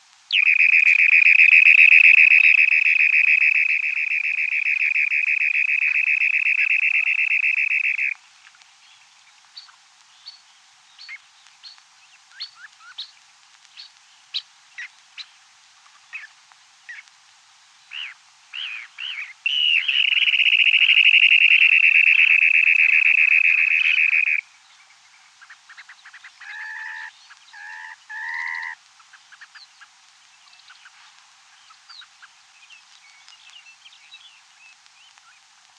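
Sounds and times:
dunlin calling: 0.3 - 8.2, 17.9 - 24.5, 25.3 - 33.4.

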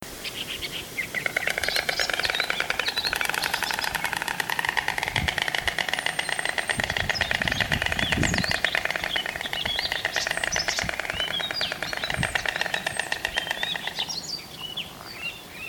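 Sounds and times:
white stork calling: 0.2 - 15.6.

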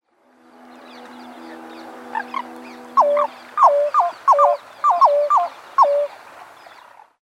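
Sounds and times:
pheasant-tailed jacana calling: 0.7 - 6.8.

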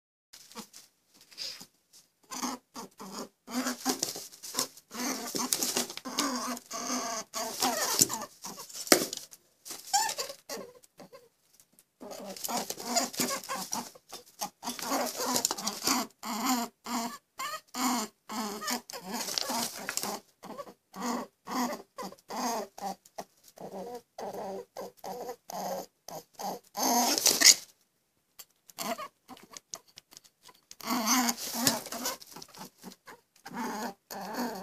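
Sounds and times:
rabbit vocalizing: 2.2 - 11.3, 12.0 - 27.7, 28.7 - 34.6.

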